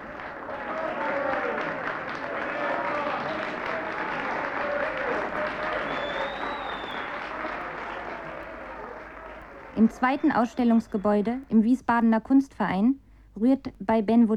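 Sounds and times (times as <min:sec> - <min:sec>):
dense applause from a group of people: 0:00.0 - 0:11.5
faint murmur of voices: 0:00.0 - 0:11.6
brief whistle-like tone: 0:05.8 - 0:07.2
speech: 0:09.8 - 0:14.3.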